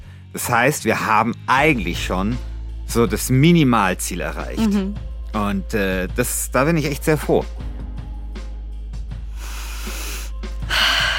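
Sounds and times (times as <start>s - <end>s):
speech: 0.4s - 7.7s
sharp nervous inhale through the mouth: 9.2s - 11.1s.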